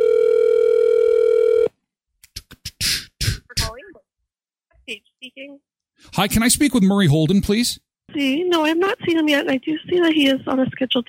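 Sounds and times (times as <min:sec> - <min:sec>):
telephone dial tone as a call is placed: 0:00.0 - 0:01.7
speech: 0:05.4 - 0:11.0.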